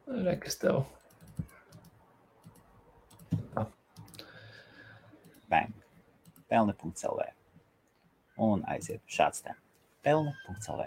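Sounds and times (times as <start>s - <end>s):
speech: 0.2s - 1.0s, 3.6s - 3.8s, 6.5s - 7.4s, 8.4s - 10.8s
typing a link into a chat on a computer keyboard: 1.0s - 4.3s, 6.2s - 6.5s.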